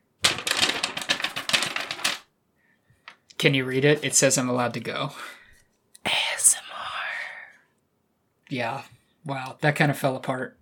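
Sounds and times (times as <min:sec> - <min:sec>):
paper rustling and crinkling: 0:00.2 - 0:02.3
speech: 0:03.4 - 0:05.4, 0:08.5 - 0:10.6.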